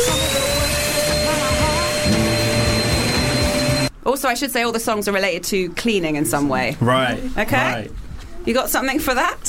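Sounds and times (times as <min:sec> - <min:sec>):
vacuum cleaner drone with a high whine: 0:00.0 - 0:03.9
speech: 0:04.1 - 0:09.4.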